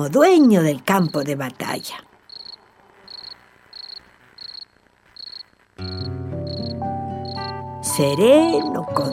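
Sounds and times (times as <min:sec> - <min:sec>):
speech: 0:00.0 - 0:02.1, 0:08.0 - 0:09.1
cricket chirping: 0:00.9 - 0:07.6
gentle music: 0:05.8 - 0:09.1.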